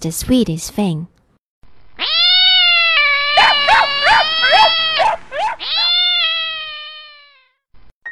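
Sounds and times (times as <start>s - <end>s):
speech: 0.0s - 1.1s
cat yowling and meowing: 2.0s - 7.5s.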